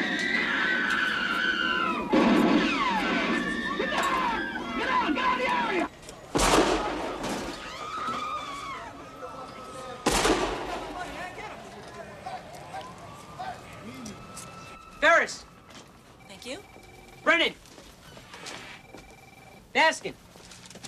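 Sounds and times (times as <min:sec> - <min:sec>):
street noise: 0:00.0 - 0:20.8
gunshots in the street: 0:02.0 - 0:04.8, 0:06.3 - 0:07.6, 0:10.0 - 0:11.4.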